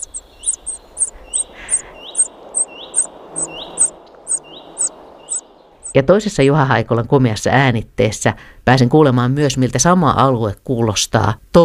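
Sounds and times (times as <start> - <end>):
common cuckoo chick begging in a common redstart nest: 0.0 - 6.0
low hiss: 0.0 - 8.9
speech: 6.0 - 11.6.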